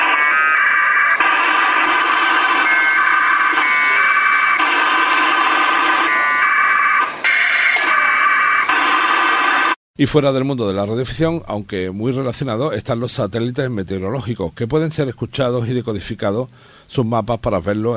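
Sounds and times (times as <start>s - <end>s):
APRS data packets sent on VHF at 144.800 MHz by a radio set with a GPS and a modem: 0.0s - 9.8s
speech: 10.0s - 17.9s.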